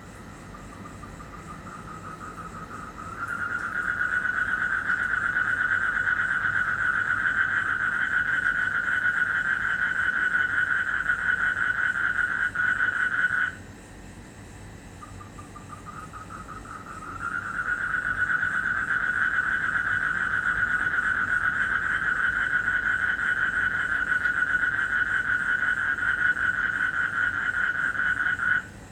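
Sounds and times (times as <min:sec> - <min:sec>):
frog trilling in Indonesia: 0:00.5 - 0:13.6, 0:15.0 - 0:28.7.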